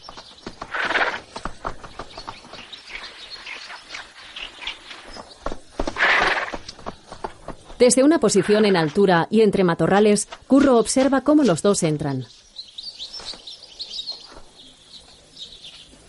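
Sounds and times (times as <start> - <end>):
horse hooves clopping in the countryside by a lake: 0.0 - 11.6
faint birdsong: 0.0 - 16.0
speech: 7.8 - 12.4.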